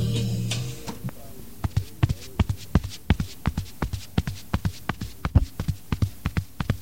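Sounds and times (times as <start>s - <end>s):
horses' hooves clip-clopping riding across a prairie: 1.6s - 6.8s.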